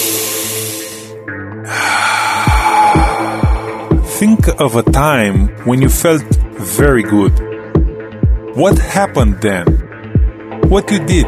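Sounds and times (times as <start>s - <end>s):
deep breath drawn in during a spoken self-help training exercise: 0.0s - 4.2s
steady music with low thumping beats: 2.1s - 11.2s
speech: 4.2s - 7.5s, 8.6s - 9.8s, 10.7s - 11.2s.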